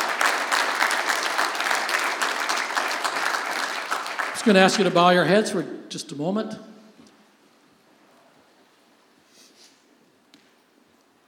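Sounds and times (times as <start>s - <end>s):
audience applauding: 0.0s - 5.3s
speech: 4.4s - 6.7s.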